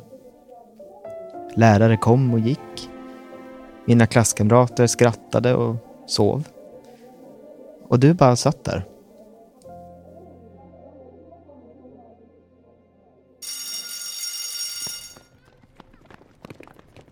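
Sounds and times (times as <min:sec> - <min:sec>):
speech: 0:01.6 - 0:02.7, 0:03.9 - 0:06.5, 0:07.9 - 0:08.9
school bell ringing for recess: 0:13.4 - 0:15.4.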